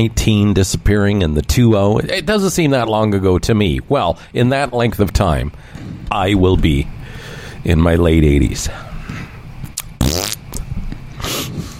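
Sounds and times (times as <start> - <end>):
speech: 0.0 - 7.0, 7.6 - 8.9
man farting: 9.8 - 11.5.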